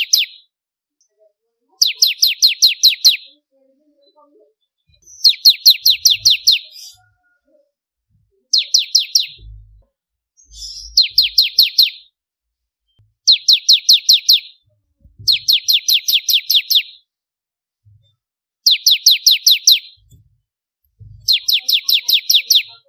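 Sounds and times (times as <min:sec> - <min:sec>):
bar-winged prinia singing rapid downward-sweeping chip notes: 0:00.0 - 0:00.5, 0:01.8 - 0:03.4, 0:05.0 - 0:07.1, 0:08.5 - 0:09.8, 0:10.4 - 0:12.2, 0:13.2 - 0:14.7, 0:15.3 - 0:17.1, 0:18.6 - 0:20.1, 0:21.2 - 0:22.8
soft low knocks: 0:09.4 - 0:09.9, 0:20.0 - 0:21.3.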